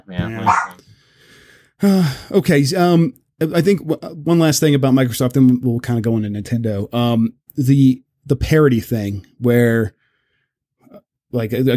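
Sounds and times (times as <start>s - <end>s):
speech: 0.1s - 0.7s, 1.8s - 10.0s, 10.9s - 11.7s
dog barking with a harmonic yelp: 0.4s - 0.8s.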